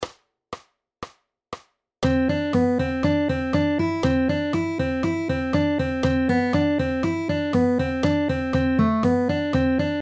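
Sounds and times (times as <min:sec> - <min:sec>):
melodic rhythm: 0:02.0 - 0:10.0.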